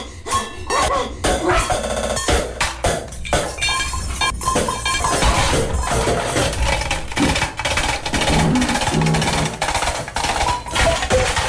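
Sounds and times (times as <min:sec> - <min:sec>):
plates and bottles smashing against a wall: 0:00.8 - 0:11.4
bits of glass clinking: 0:03.2 - 0:06.2.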